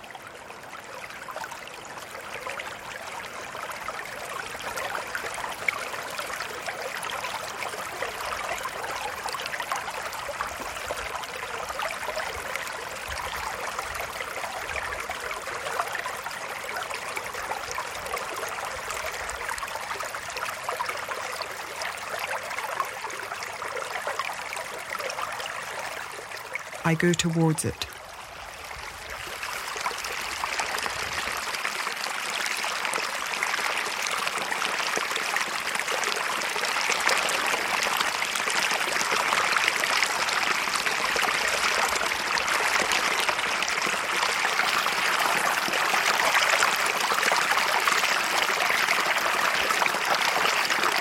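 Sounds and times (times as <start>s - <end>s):
small stream trickling over stones: 0.0s - 50.9s
speech: 26.9s - 27.9s.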